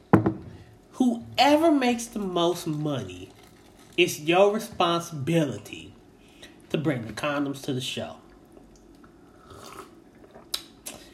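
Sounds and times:
speech: 1.0s - 3.4s, 4.0s - 6.0s, 6.7s - 8.2s
sipping gin from a glass: 9.4s - 11.1s.

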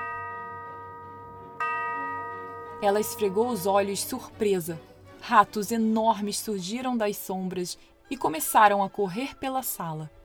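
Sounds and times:
clock chiming midnight: 0.0s - 3.8s
speech: 2.8s - 10.2s.

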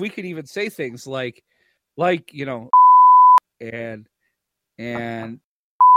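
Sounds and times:
speech: 0.0s - 2.8s, 3.6s - 4.1s, 4.8s - 5.4s
high-pitched censorship bleep tones: 2.7s - 3.4s, 5.8s - 5.9s.

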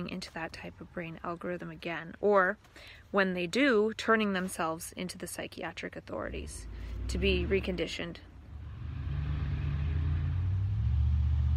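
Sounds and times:
speech: 0.0s - 8.3s
loud truck passing by: 6.2s - 11.5s.

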